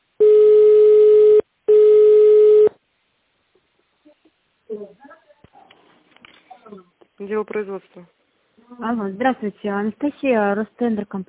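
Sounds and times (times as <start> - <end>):
telephone line tones while a call is transferred: 0.2 - 2.7
speech: 7.2 - 11.2.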